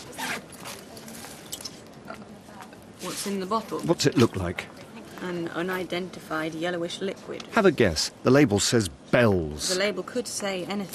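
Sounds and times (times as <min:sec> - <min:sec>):
zipper pulled open on a traveller's bag at airport security: 0:00.0 - 0:01.4
speech: 0:03.0 - 0:10.9.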